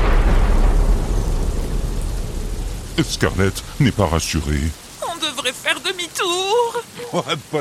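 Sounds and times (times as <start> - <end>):
thunderclap during a rain shower: 0.0 - 5.0
speech: 3.0 - 4.8, 5.4 - 7.5.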